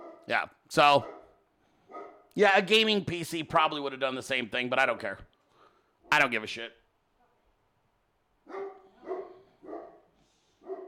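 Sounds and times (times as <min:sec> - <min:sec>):
dog barking: 0:00.0 - 0:00.3, 0:00.9 - 0:02.3, 0:08.4 - 0:10.8
speech: 0:00.3 - 0:01.2, 0:02.4 - 0:05.3, 0:06.1 - 0:06.8.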